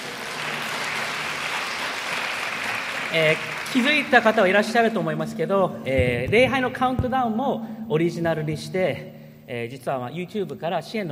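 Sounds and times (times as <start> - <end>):
audience applause at a church worship service: 0.0 - 5.1
speech: 3.1 - 11.1.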